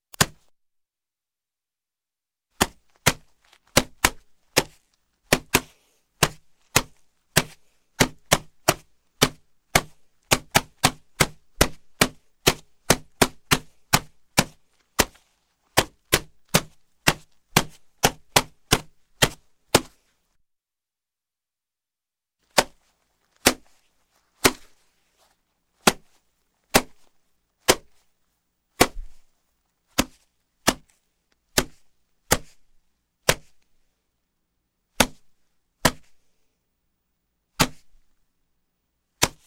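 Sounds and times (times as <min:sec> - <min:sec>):
single punch with a boxing glove: 0:02.6 - 0:20.0, 0:22.5 - 0:23.8, 0:24.4 - 0:24.8, 0:25.8 - 0:28.1, 0:28.8 - 0:29.3, 0:29.9 - 0:32.6, 0:33.2 - 0:33.6, 0:35.0 - 0:36.2, 0:37.6 - 0:38.0, 0:39.2 - 0:39.4.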